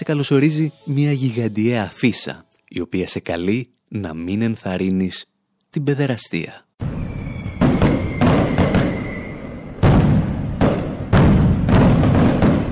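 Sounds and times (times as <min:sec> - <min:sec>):
speech: 0:00.1 - 0:06.7
fireworks bursting: 0:06.8 - 0:12.7
faint whistle: 0:07.0 - 0:09.8.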